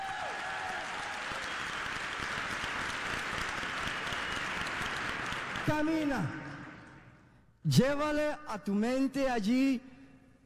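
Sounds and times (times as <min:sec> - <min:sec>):
congregation applauding: 0:00.0 - 0:07.2
speech: 0:05.7 - 0:06.4, 0:07.6 - 0:09.9.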